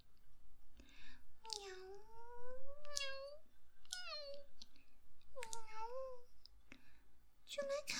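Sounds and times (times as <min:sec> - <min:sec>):
faint low hum: 0:00.0 - 0:07.9
cat meowing: 0:01.5 - 0:04.5.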